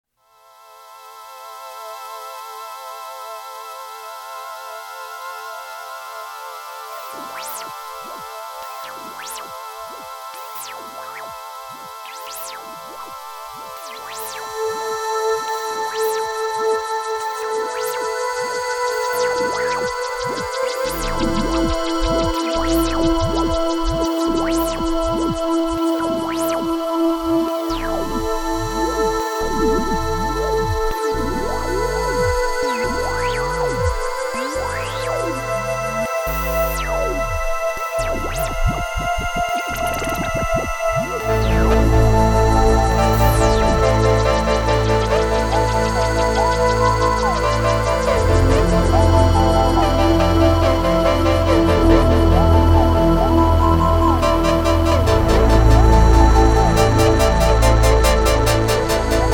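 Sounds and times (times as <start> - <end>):
Kawai K3 synthesizer ambient pad: 0.5 - 59.3.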